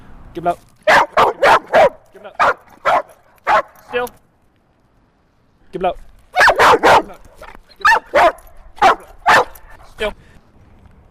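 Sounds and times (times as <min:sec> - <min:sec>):
speech: 0:00.4 - 0:00.7, 0:02.2 - 0:02.6, 0:03.9 - 0:04.2, 0:05.7 - 0:06.1, 0:10.0 - 0:10.3
dog barking on command during obedience training: 0:00.9 - 0:03.8, 0:06.4 - 0:07.2, 0:07.8 - 0:09.8.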